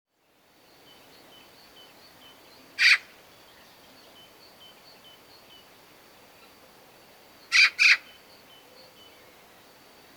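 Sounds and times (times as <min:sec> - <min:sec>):
Eurasian magpie Pica pica harsh chak call: 0:02.8 - 0:03.0, 0:07.5 - 0:08.0.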